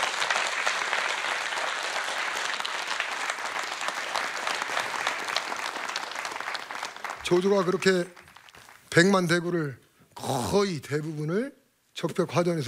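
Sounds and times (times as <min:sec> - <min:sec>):
audience applause: 0:00.0 - 0:08.8
speech: 0:07.3 - 0:08.2, 0:09.0 - 0:12.6.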